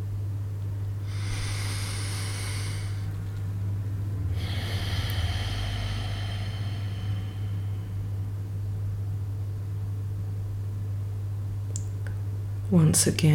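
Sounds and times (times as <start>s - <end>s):
steady low hum: 0.0s - 13.3s
long airy exhale through the mouth in a relaxation exercise: 1.0s - 3.2s, 4.3s - 8.1s
deep inhale through the nose in a relaxation exercise: 1.0s - 3.3s, 4.2s - 8.2s.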